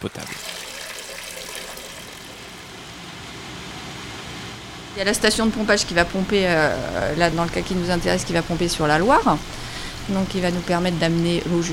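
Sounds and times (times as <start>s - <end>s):
speech: 0.0s - 0.6s, 5.0s - 11.7s
drinking water from the Loire running from a tap in Nantes France: 0.0s - 2.6s.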